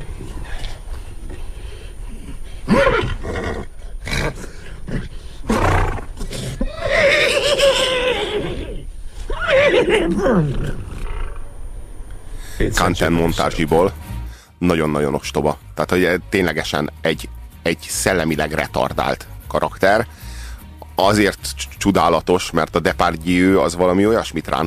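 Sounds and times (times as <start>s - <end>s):
short raspy breaths: 0.0s - 2.8s, 3.7s - 5.6s, 14.2s - 14.6s, 20.1s - 20.8s
person imitating a horse's neigh: 2.7s - 4.6s, 5.5s - 11.3s
speech: 10.1s - 10.8s, 12.7s - 14.0s, 14.6s - 20.2s, 21.0s - 24.6s.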